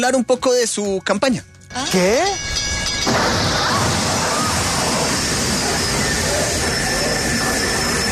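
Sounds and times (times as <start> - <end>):
speech: 0.0 - 3.2
thin high whining tones: 1.7 - 8.1
train arriving in a film scene: 1.7 - 8.1.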